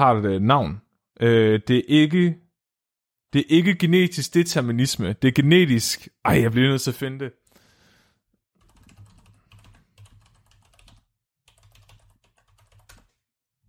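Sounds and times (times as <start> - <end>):
speech: 0.0 - 2.4, 3.3 - 7.4
computer keyboard keystrokes clicking: 8.6 - 13.2.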